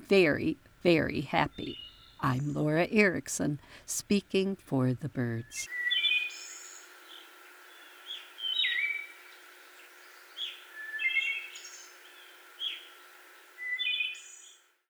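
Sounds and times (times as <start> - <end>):
speech: 0.1 - 5.8
wood thrush singing fluting phrases: 5.5 - 14.6.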